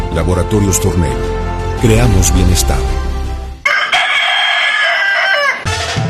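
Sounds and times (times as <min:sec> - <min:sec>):
speech: 0:00.2 - 0:03.0
rooster crowing: 0:03.6 - 0:06.0.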